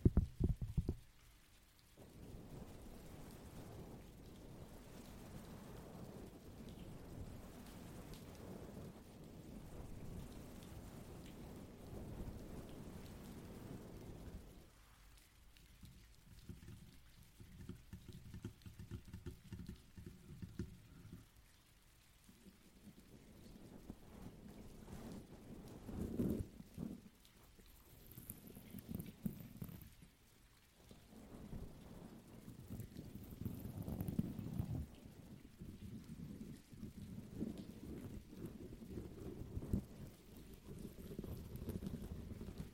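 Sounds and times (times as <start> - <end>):
heavy rain: 0.0 - 42.7.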